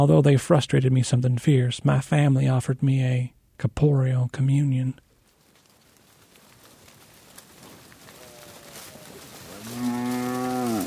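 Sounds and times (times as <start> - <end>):
speech: 0.0 - 5.1
cow letting out a long loud moo: 8.1 - 10.8.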